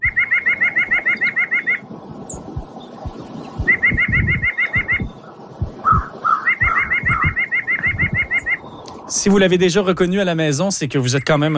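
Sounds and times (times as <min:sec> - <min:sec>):
white-breasted nuthatch calling: 0:00.0 - 0:02.5, 0:03.6 - 0:08.9
low thumping rumbles: 0:02.3 - 0:08.5
speech: 0:09.2 - 0:11.5.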